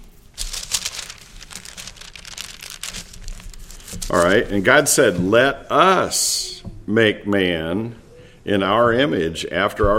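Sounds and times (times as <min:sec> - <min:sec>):
curled paper being handled and crinkled: 0:00.0 - 0:05.1
speech: 0:03.9 - 0:09.9.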